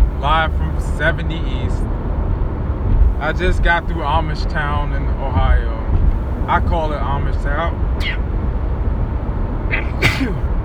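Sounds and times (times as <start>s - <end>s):
steady low rumbling road or engine noise: 0.0s - 10.6s
speech: 0.2s - 2.0s, 3.2s - 5.8s, 6.4s - 8.3s, 9.7s - 10.4s
person sneezing with a quick preparatory intake: 9.7s - 10.5s.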